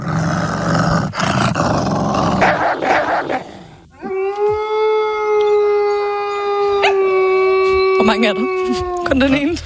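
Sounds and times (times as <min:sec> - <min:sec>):
young wolf growling low and raspy: 0:00.0 - 0:04.5
young wolf short bark: 0:02.4 - 0:03.6
young wolf long steady howl: 0:04.0 - 0:09.2
speech: 0:08.0 - 0:09.6.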